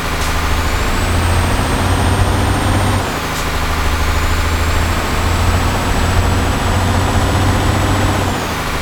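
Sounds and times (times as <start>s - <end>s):
Actros truck: 0.0s - 8.7s
cars: 0.0s - 8.7s.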